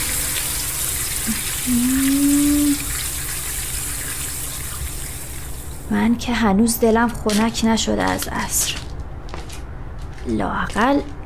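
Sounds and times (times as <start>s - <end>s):
water poured onto potted flowers: 0.0s - 6.0s
speech: 1.3s - 2.2s, 5.9s - 8.8s, 10.3s - 11.1s.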